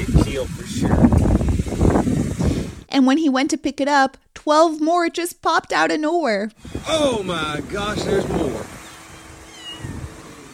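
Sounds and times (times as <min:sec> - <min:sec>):
speech: 0:00.4 - 0:02.2, 0:03.0 - 0:08.7
small stray kitten meowing on a roadside in Louisiana: 0:09.1 - 0:10.0.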